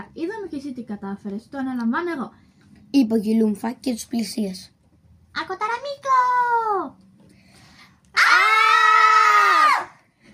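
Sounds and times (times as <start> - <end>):
speech: 0.6 - 4.8, 5.4 - 7.0
person shrieking imitating aliens: 8.2 - 10.0.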